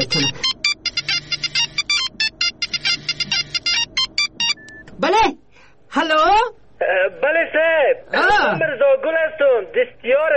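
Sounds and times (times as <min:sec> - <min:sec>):
phone ringtone with chirpy electronic pattern: 0:00.0 - 0:04.8
speech: 0:00.1 - 0:00.5, 0:06.0 - 0:10.3.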